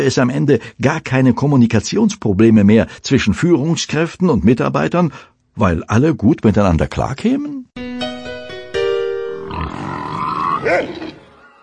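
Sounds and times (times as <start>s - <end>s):
speech: 0.0s - 7.9s, 9.6s - 11.0s
comic pig grunts and snorts: 9.5s - 11.3s.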